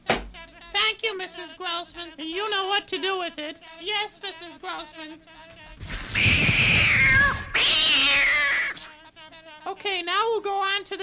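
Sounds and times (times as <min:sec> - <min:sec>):
speech: 0:01.0 - 0:06.0, 0:09.6 - 0:11.0
cat yowling: 0:06.0 - 0:08.9.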